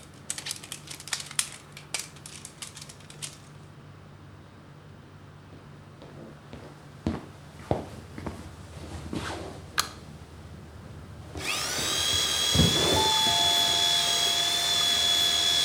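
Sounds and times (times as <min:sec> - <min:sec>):
knocks and handling sounds: 0:00.0 - 0:03.7
electric power drill drilling into wall: 0:11.4 - 0:15.6.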